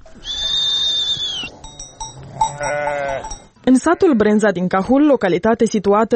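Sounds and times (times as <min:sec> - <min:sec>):
sheep or goats bleating: 0:00.1 - 0:04.4
speech: 0:03.7 - 0:06.1.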